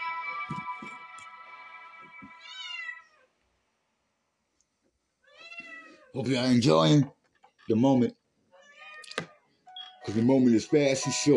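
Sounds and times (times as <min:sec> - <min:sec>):
cat meowing with a long wavering meow and rising yowl: 0:02.4 - 0:03.3, 0:05.3 - 0:06.2, 0:08.5 - 0:09.4
speech: 0:06.1 - 0:08.2, 0:10.1 - 0:11.3.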